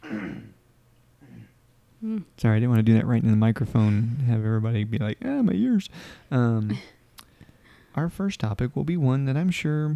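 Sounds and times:
person clearing throat: 0.0 - 0.6, 1.2 - 2.2
speech: 2.0 - 7.0, 8.0 - 9.9.

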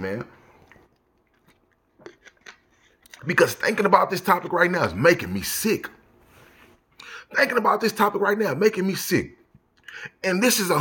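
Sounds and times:
speech: 0.0 - 0.4, 3.2 - 6.0, 7.3 - 9.4, 10.0 - 10.8
person sipping a drink: 0.6 - 3.2.

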